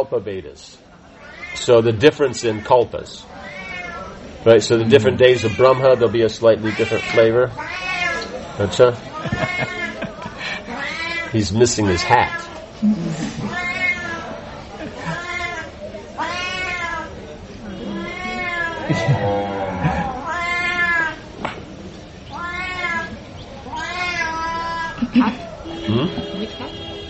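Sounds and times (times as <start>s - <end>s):
speech: 0.0s - 0.9s, 1.5s - 3.6s, 4.4s - 8.0s, 8.6s - 9.8s, 11.3s - 13.7s
cat meowing: 1.2s - 1.6s, 3.3s - 4.2s, 5.2s - 6.1s, 6.7s - 8.3s, 9.1s - 10.0s, 10.7s - 11.3s, 12.0s - 12.6s, 13.4s - 14.4s, 15.0s - 17.2s, 17.8s - 19.1s, 19.8s - 21.2s, 22.3s - 25.0s
laughter: 9.0s - 10.8s, 14.7s - 15.3s, 18.8s - 20.3s, 25.0s - 26.1s.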